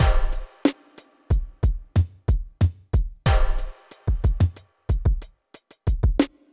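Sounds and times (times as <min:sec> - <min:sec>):
deep beat: 0:00.0 - 0:00.6, 0:01.3 - 0:05.3, 0:05.9 - 0:06.3.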